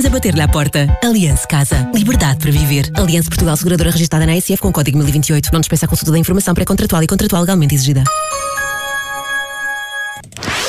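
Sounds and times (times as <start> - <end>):
speech: 0.0 - 8.6
electronic alarm clock ringing: 8.1 - 10.2.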